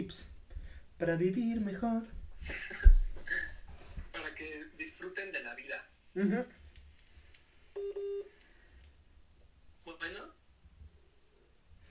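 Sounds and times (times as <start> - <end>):
speech: 0.0 - 0.3, 1.0 - 2.8, 6.2 - 6.6
laughter: 2.4 - 3.6
electronic telephone dialing tones during an unanswered call: 7.8 - 8.3.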